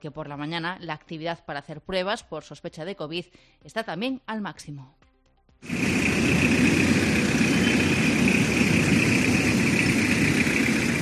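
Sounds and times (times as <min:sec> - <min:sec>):
speech: 0:00.0 - 0:05.0, 0:05.6 - 0:06.7
faint whine: 0:05.7 - 0:11.0
queue of car engines idling: 0:05.7 - 0:11.0.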